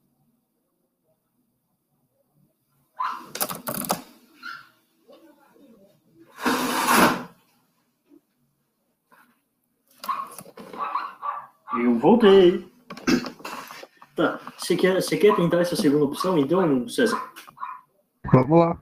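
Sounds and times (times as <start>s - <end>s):
dog barking: 3.0s - 3.3s, 4.4s - 4.8s, 10.0s - 12.0s, 15.2s - 18.4s
window sliding shut: 6.4s - 7.3s
speech: 11.8s - 12.7s, 14.2s - 17.3s, 18.3s - 18.7s.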